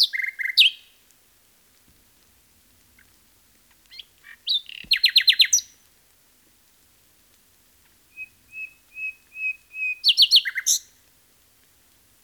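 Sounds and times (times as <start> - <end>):
common nightingale singing: 0.0 - 0.9, 3.9 - 5.8, 8.1 - 11.0.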